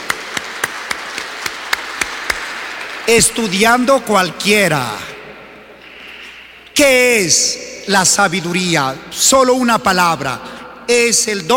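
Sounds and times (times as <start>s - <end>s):
sharp hand claps: 0.0s - 3.1s
speech: 3.1s - 5.1s, 6.8s - 11.5s.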